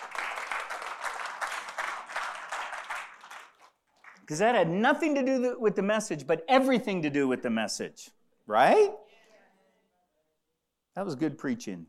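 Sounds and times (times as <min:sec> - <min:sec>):
congregation applauding, many hands clapping: 0:00.0 - 0:04.4
speech: 0:04.3 - 0:09.0, 0:11.0 - 0:11.8.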